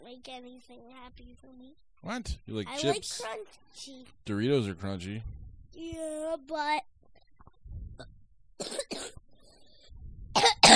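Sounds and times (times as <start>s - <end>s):
speech: 0.0s - 6.9s
person coughing into a microphone: 8.6s - 9.2s, 10.4s - 10.7s.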